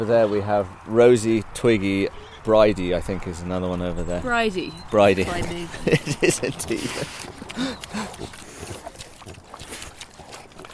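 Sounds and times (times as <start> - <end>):
speech: 0.0 - 8.2
steady outdoor rustling: 0.0 - 10.7
laughter: 5.2 - 8.1
short low pig grunts: 6.6 - 10.7.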